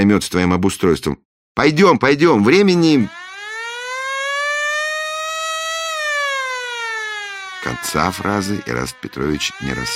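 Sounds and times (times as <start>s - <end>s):
speech: 0.0s - 3.2s, 7.7s - 9.9s
powerful siren blaring: 2.5s - 9.9s.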